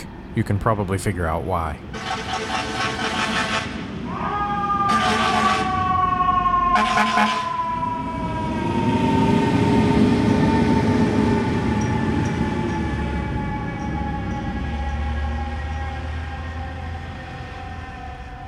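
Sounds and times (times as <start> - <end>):
steady traffic rumble: 0.0 - 18.4
speech: 0.4 - 2.0, 6.8 - 7.5
short horn-like bursts: 1.9 - 3.8, 4.9 - 5.7, 6.8 - 7.4
New York City fire truck siren wailing with a warbling sliding tone: 1.9 - 18.4.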